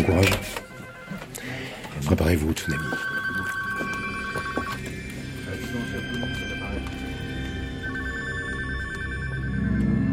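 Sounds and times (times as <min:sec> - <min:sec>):
indistinct voices murmuring: 0:00.0 - 0:07.9
several telephones ringing in a busy room: 0:00.0 - 0:10.0
speech: 0:00.1 - 0:00.6, 0:02.1 - 0:03.2.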